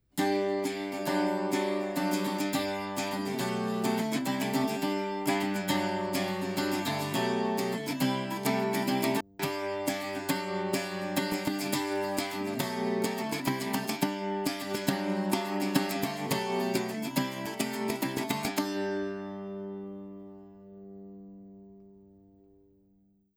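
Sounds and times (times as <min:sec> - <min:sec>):
bouzouki: 0:00.0 - 0:22.9.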